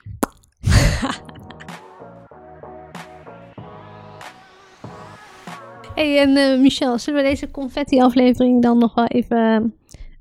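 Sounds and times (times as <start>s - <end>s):
prosecco bottle cork popping: 0.2s - 0.6s
laughter: 0.7s - 1.7s
speech: 6.0s - 9.8s.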